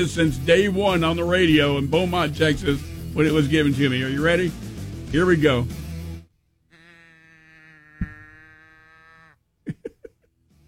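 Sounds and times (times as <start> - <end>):
speech: 0.0 - 5.8
cow moo toy turned upside down bellowing: 6.7 - 9.4.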